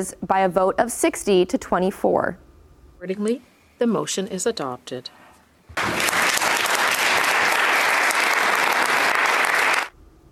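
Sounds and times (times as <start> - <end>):
speech: 0.0 - 2.4, 3.0 - 6.0
large group applauding in the Senate chamber: 5.7 - 9.9.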